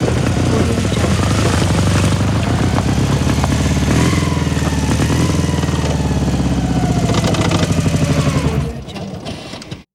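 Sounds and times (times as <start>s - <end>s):
motorcycle engine starting and stopping: 0.0s - 9.9s.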